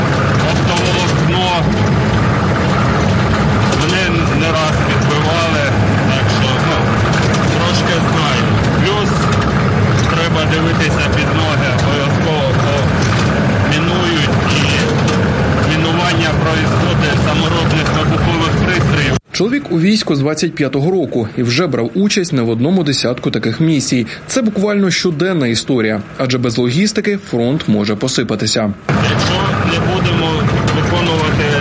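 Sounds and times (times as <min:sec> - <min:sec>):
armored net-covered Humvee engine rumbling while driving: 0:00.0 - 0:31.5
busy noisy background: 0:00.0 - 0:31.5
speech: 0:19.8 - 0:30.3.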